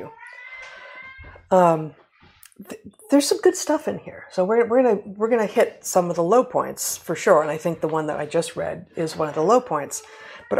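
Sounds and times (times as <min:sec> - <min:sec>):
cat meowing: 0:00.0 - 0:01.4
speech: 0:01.5 - 0:02.0, 0:02.6 - 0:10.5.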